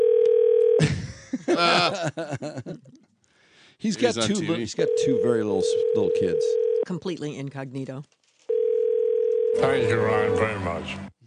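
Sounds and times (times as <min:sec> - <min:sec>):
telephone dial tone: 0:00.0 - 0:00.8, 0:05.8 - 0:06.8, 0:08.5 - 0:09.6
people talking and laughing: 0:01.4 - 0:03.1
speech: 0:01.6 - 0:03.0, 0:03.8 - 0:08.2, 0:09.6 - 0:11.1.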